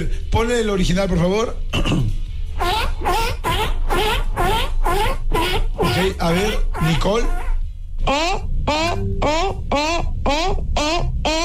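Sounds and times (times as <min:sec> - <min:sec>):
speech: 0:00.0 - 0:03.4, 0:05.9 - 0:07.4, 0:08.0 - 0:11.0
person imitating seal barks: 0:02.6 - 0:11.4.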